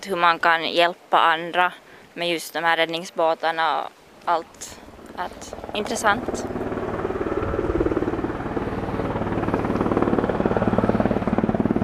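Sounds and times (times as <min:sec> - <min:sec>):
speech: 0:00.0 - 0:06.6
helicopter rotor blades chopping during a rescue manoeuvre demonstration: 0:04.6 - 0:11.8.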